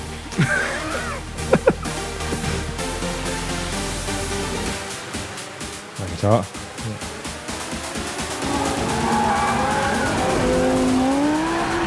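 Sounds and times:
car engines roaring in an illegal street race: 0.0s - 11.8s
laughter: 0.3s - 2.8s
speech: 0.4s - 0.6s, 6.2s - 6.6s
car tires squealing in an illegal street race: 7.4s - 11.8s.

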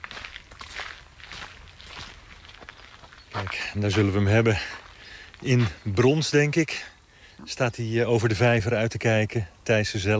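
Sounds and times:
footsteps walking through a garden: 0.0s - 6.4s
speech: 3.4s - 4.8s, 5.4s - 10.1s.

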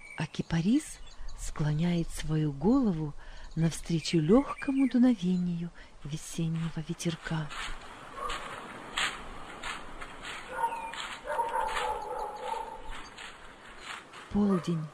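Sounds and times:
speech: 0.2s - 8.4s, 14.3s - 14.9s
dog barking and yelping while walking along a road: 8.1s - 8.6s, 10.3s - 13.1s.

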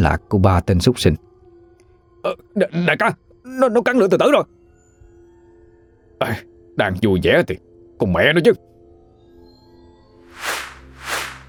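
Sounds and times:
speech: 0.0s - 1.3s, 2.2s - 4.6s, 6.2s - 8.7s
arrows whooshing through the air: 10.3s - 11.4s.

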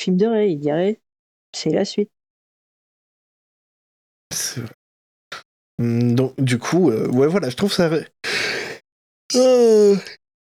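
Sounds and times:
speech: 0.0s - 2.2s, 4.4s - 4.8s, 5.8s - 8.2s, 9.3s - 10.2s
person yawning: 9.3s - 10.2s.

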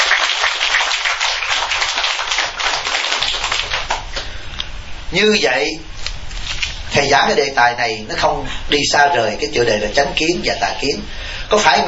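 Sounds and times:
audience applause: 0.0s - 4.2s
speech: 5.1s - 6.0s, 7.0s - 11.8s.

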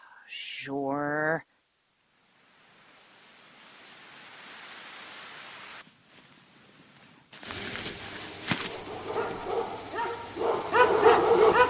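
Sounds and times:
steady hiss: 0.0s - 10.8s
speech: 0.3s - 1.5s
several dogs barking and yipping: 8.8s - 11.6s.

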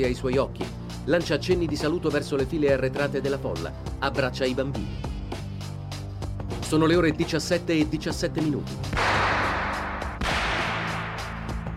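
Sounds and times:
speech: 0.0s - 5.1s, 6.7s - 9.1s
gunshots fired at a greeting figure in an open vehicle: 8.9s - 11.7s
sharp gunshot crack: 8.9s - 11.7s.

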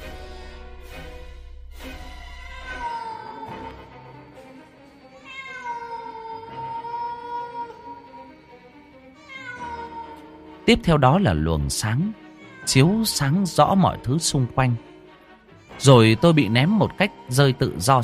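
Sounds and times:
cat meowing: 2.3s - 3.8s, 5.2s - 8.4s, 9.2s - 10.4s, 12.1s - 14.3s
speech: 10.7s - 14.9s, 15.8s - 18.0s.

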